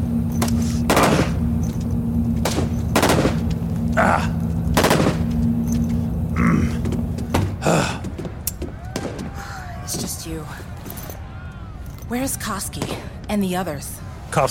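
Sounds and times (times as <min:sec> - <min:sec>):
steady low hum: 0:00.0 - 0:14.4
gunfire: 0:00.8 - 0:01.4, 0:02.4 - 0:03.5, 0:04.8 - 0:05.3
speech: 0:12.2 - 0:14.4.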